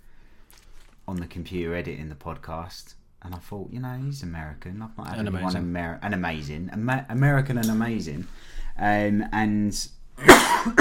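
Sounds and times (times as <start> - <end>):
speech: 1.1 - 10.7
man coughing heavily: 10.2 - 10.7.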